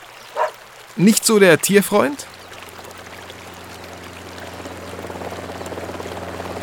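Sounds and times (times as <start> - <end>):
speech: 1.0 - 2.3
helicopter droning: 2.3 - 6.6.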